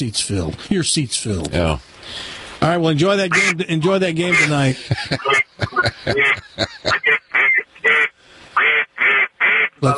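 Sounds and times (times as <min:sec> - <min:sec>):
speech: 0:00.0 - 0:07.2, 0:09.8 - 0:09.9
duck call blown in raspy quacks: 0:03.3 - 0:03.6, 0:04.3 - 0:04.6, 0:06.1 - 0:09.8
laughter: 0:04.3 - 0:07.2.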